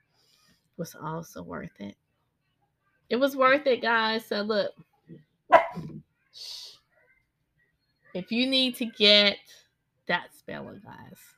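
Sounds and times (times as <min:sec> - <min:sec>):
speech: 0:00.8 - 0:02.0, 0:03.1 - 0:06.7, 0:08.2 - 0:11.3
female pet dog barking: 0:05.5 - 0:05.9.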